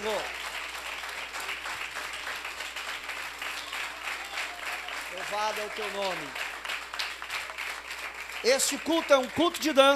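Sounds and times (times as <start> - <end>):
large crowd applauding: 0.0 - 9.9
speech: 5.3 - 6.4, 8.4 - 9.9.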